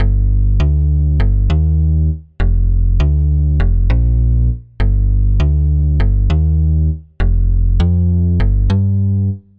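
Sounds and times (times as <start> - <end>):
low Q bass loop: 0.0 - 9.5.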